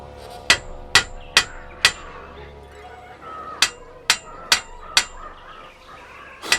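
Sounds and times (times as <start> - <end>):
hammer tapping on metal cage bars: 0.5 - 2.4, 3.6 - 5.8.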